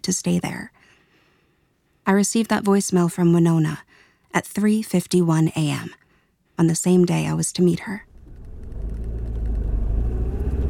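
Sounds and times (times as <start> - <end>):
speech: 0.1 - 0.8, 2.1 - 6.0, 6.6 - 8.1
car engine rumble driving up toward a park: 8.1 - 10.6.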